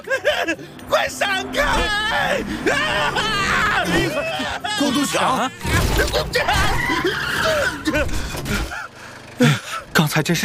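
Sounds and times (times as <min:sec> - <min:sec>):
car tires squealing while skidding through a forest: 0:00.0 - 0:10.4
speech: 0:00.1 - 0:08.8, 0:09.4 - 0:10.4
people shouting excitedly: 0:00.8 - 0:07.7.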